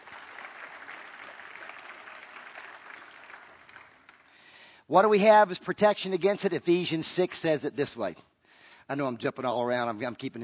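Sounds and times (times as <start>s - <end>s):
audience applauding: 0.0s - 4.5s
speech: 4.9s - 8.3s, 8.9s - 10.4s.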